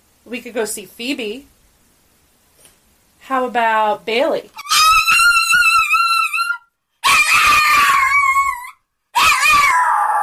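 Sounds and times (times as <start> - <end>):
speech: 0.2 - 1.6, 3.3 - 4.6
dog howling excitedly: 4.6 - 10.2.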